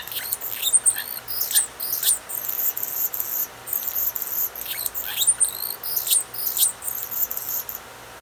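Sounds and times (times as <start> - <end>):
male Anna's hummingbird singing in territory: 0.0 - 7.8.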